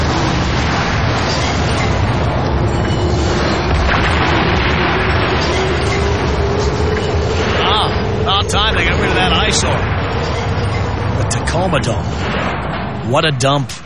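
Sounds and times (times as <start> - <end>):
explosion sound effects for a dome demolition: 0.0 - 13.0
speech: 11.6 - 12.3, 13.1 - 13.8.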